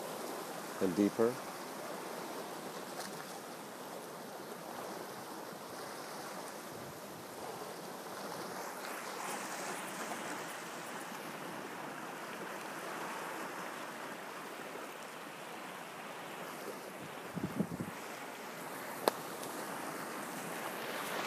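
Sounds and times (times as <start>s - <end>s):
ocean waves breaking on rocks: 0.0s - 21.2s
speech: 0.8s - 1.5s.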